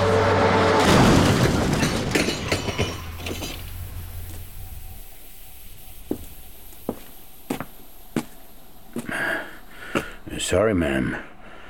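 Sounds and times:
truck skidding across median strip and slamming into car: 0.1s - 4.2s
debris clinking and clattering: 0.9s - 3.9s
speech: 10.5s - 11.3s.

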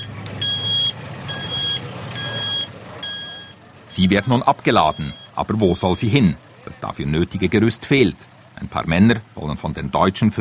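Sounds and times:
German army truck reversing alarm beeping: 0.0s - 8.1s
low diesel engine rumble of army truck: 0.0s - 10.3s
speech: 4.0s - 10.3s.

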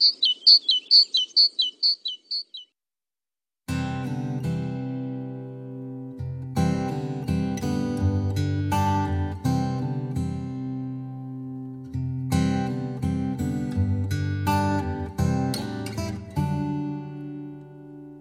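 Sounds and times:
bird chirping: 0.0s - 2.8s
music: 3.7s - 18.2s.

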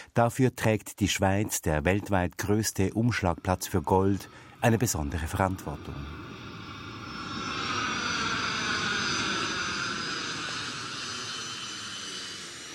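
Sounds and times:
speech: 0.2s - 6.4s
high jet-engine whine of landing cargo airplane: 2.4s - 12.7s
cargo airplane landing at airport, jet-engine roar: 3.7s - 12.7s.

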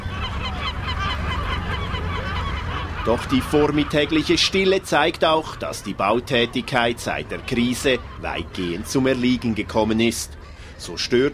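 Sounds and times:
ducks quacking at a city pond being fed bread: 0.0s - 11.3s
geese honking at a city pond being fed bread: 0.0s - 11.3s
speech: 3.1s - 11.3s.

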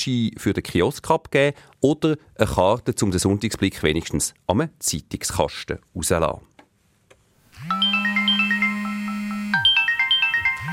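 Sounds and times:
speech: 0.0s - 6.5s
mobile phone ringing with an electronic melody: 7.6s - 10.7s.

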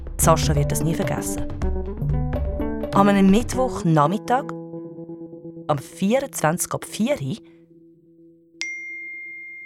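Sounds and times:
speech: 0.2s - 1.7s, 2.9s - 4.6s, 5.7s - 7.5s
mobile phone message notification ding: 8.6s - 9.6s.

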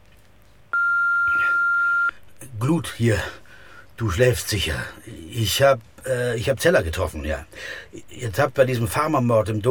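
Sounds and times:
faint hiss: 0.0s - 9.6s
answering machine beep: 0.8s - 2.1s
speech: 2.6s - 3.4s, 4.0s - 9.6s.

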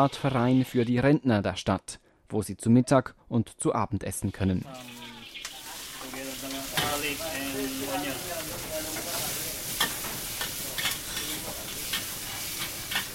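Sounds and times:
speech: 0.0s - 5.1s
minced pork sizzling while frying in a restaurant kitchen in Macau: 4.6s - 13.1s
utensil clacking while stirring the pan: 8.4s - 13.1s.

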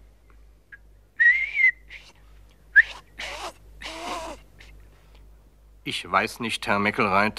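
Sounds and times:
person whistling a short breathy tune: 1.2s - 3.0s
speech: 5.8s - 7.3s.

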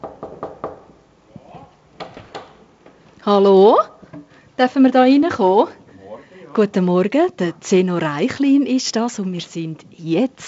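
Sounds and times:
knocking on a door to a props-making room: 0.0s - 0.9s
speech: 3.2s - 3.9s, 4.6s - 5.8s, 6.6s - 10.4s.

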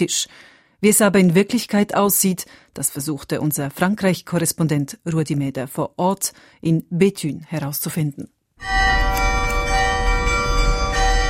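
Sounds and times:
speech: 0.0s - 9.0s
bells ringing from medieval bell tower in Grand Place in Béthune France: 8.6s - 11.2s.

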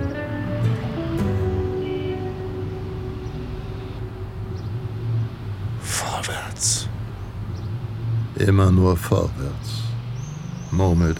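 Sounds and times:
tonal whine: 0.0s - 8.3s
low rumble of city street traffic heard from a rooftop: 0.0s - 11.1s
speech: 8.4s - 9.8s, 10.8s - 11.1s.

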